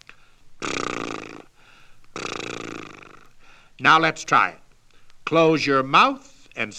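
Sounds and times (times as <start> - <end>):
person blowing lips to flap in a lip trill: 0.0 - 3.4
speech: 3.8 - 4.6, 5.3 - 6.7.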